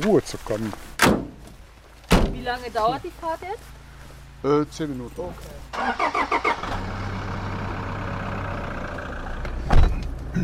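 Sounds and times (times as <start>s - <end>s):
speech: 0.0s - 0.9s, 2.4s - 3.8s, 4.4s - 6.8s
car engine cranking: 5.7s - 10.3s.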